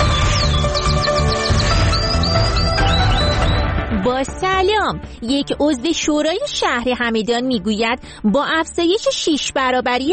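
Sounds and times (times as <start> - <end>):
small songbird chirping and trilling: 0.0 - 3.8
speech: 4.9 - 10.1.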